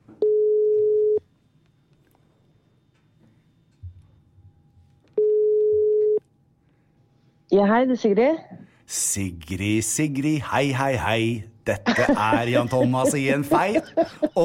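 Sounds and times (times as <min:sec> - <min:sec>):
telephone ringing tone on an outgoing call: 0:00.2 - 0:01.2, 0:05.2 - 0:06.2
speech: 0:07.5 - 0:14.4
laughter: 0:11.7 - 0:14.4.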